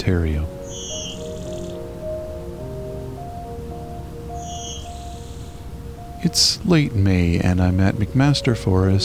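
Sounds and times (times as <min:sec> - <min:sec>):
speech: 0:00.0 - 0:00.6, 0:06.2 - 0:09.0
blue-winged warbler singing buzzy two-part song in shrubby meadow: 0:00.0 - 0:07.1
faint tonal calls: 0:00.4 - 0:06.9.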